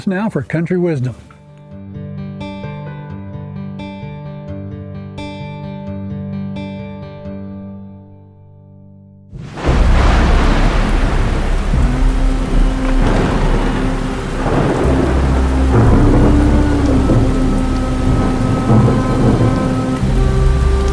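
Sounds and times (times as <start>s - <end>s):
speech: 0.0s - 1.3s
deep rolls of thunder rumbling: 9.4s - 20.9s
steady heavy rain in a thunderstorm: 9.4s - 20.9s.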